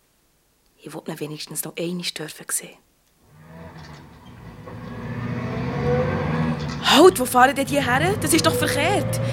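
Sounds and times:
speech: 0:00.8 - 0:02.9, 0:06.9 - 0:09.3
taxi road noise: 0:03.2 - 0:09.3
taxi engine low rumble while driving: 0:03.3 - 0:09.3.

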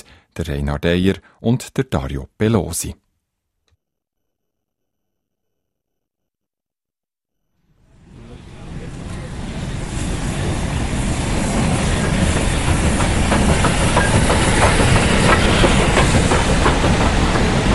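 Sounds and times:
speech: 0:00.4 - 0:03.0
historic steam train of a mountain steam railway rumbling at station: 0:07.8 - 0:17.7
faint rhythmic clacking of steam train: 0:11.6 - 0:17.7.

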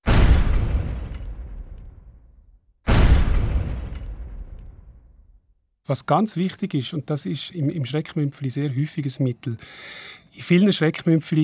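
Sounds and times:
heavy explosions rolling into rumble: 0:00.0 - 0:05.4
speech: 0:05.9 - 0:11.4.

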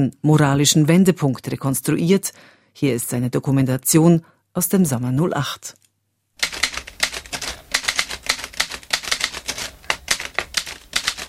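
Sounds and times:
speech: 0:00.0 - 0:05.8
typewriter typing with irregular keystrokes: 0:06.4 - 0:11.2.

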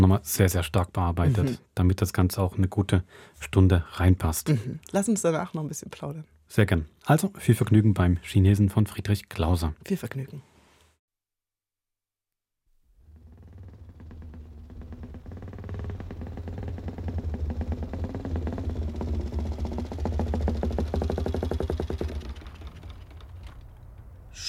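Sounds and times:
speech: 0:00.0 - 0:10.5
motorcycle engine idling then stopping: 0:13.1 - 0:23.4.

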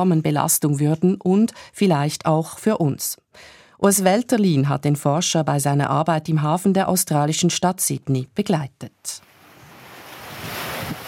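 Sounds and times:
speech: 0:00.0 - 0:09.3
ocean waves washing onto the beach at Manly in Sydney Australia: 0:09.2 - 0:11.0
wind noise brushing the microphone: 0:09.5 - 0:11.0.

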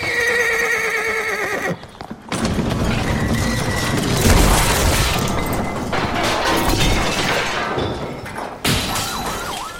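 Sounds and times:
hoofbeats: 0:00.0 - 0:03.8
shelf of equestrian trophies crashing over: 0:02.3 - 0:09.4.

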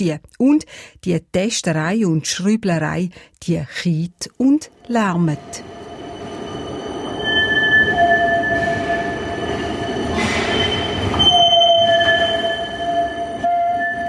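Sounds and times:
speech: 0:00.0 - 0:05.9
heavy rumbling rail noise of tram: 0:04.7 - 0:14.0
new tram wheels squealing through a curve: 0:05.0 - 0:14.0.

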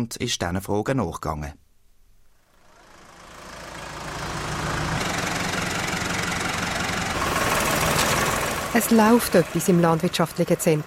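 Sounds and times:
speech: 0:00.0 - 0:01.6, 0:08.7 - 0:10.8
tractor diesel engine running with a rattling, knocking texture: 0:02.4 - 0:10.8.

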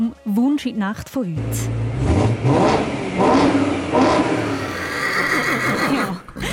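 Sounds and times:
speech: 0:00.0 - 0:02.9
sports car engine revving: 0:01.4 - 0:05.0
horse neighing: 0:04.4 - 0:06.4.

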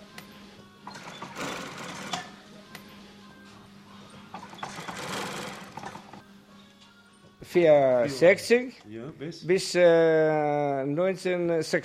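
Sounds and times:
sewing machine stitching fur pieces: 0:00.9 - 0:02.3, 0:04.3 - 0:06.2
speech: 0:07.5 - 0:11.8.

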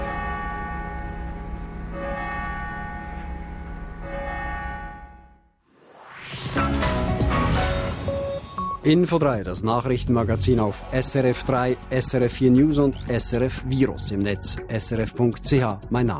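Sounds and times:
church bells pealing on Sunday morning: 0:00.0 - 0:05.4
bright rising burst of sound: 0:05.6 - 0:08.6
speech: 0:08.8 - 0:16.1.

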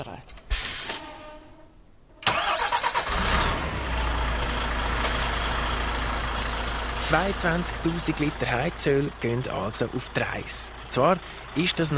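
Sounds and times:
air brakes hissing on heating-oil tanker truck: 0:00.5 - 0:01.5, 0:05.0 - 0:07.2
heating-oil tanker truck loaded with heating oil starting and pulling away: 0:02.4 - 0:11.9
speech: 0:07.1 - 0:11.9.

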